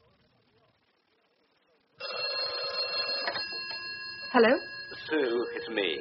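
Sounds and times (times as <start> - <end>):
telephone ringing during an outgoing phone call: 2.0 - 5.9
speech: 4.4 - 5.9.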